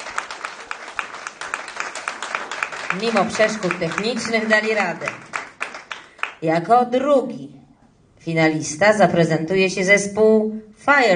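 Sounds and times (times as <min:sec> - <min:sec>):
audience applause for a band at a music competition final: 0:00.0 - 0:06.4
speech: 0:02.9 - 0:05.3, 0:06.4 - 0:07.6, 0:08.2 - 0:11.1.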